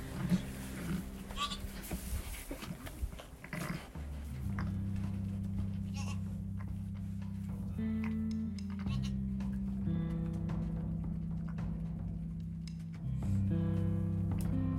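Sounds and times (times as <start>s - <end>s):
ewe murmuring calls greeting her newborn ewe lamb on a sheep farm: 0.0s - 5.0s, 5.7s - 6.8s, 7.8s - 9.6s
rustling: 0.0s - 14.6s.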